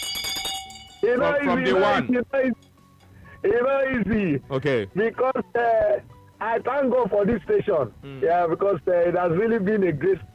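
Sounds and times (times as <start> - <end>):
bell ringing: 0.0 - 1.7
speech: 1.0 - 2.7, 3.4 - 10.3.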